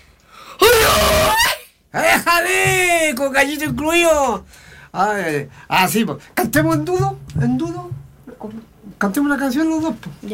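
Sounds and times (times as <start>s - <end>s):
person yelling: 0.6s - 3.2s
speech: 2.5s - 10.3s.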